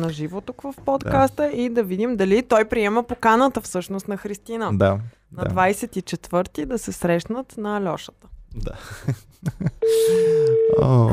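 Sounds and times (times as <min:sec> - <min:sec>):
speech: 0:00.0 - 0:11.1
plain telephone ringback tone with no melody while a call is placed: 0:09.8 - 0:11.1.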